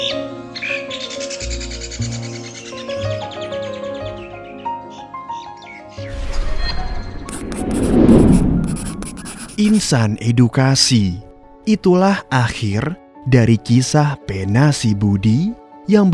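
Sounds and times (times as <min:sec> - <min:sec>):
starling calls: 0:00.0 - 0:06.0
steady tonal background: 0:06.0 - 0:12.0
rough rustling burst: 0:06.1 - 0:09.9
speech: 0:09.6 - 0:16.1.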